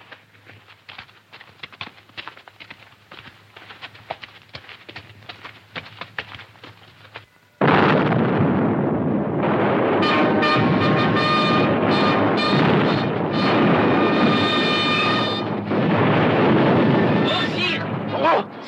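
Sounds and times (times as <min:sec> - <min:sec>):
sharp cracks and clattering thuds of grapeshot: 0:00.0 - 0:18.4
cannon blast: 0:07.6 - 0:18.6.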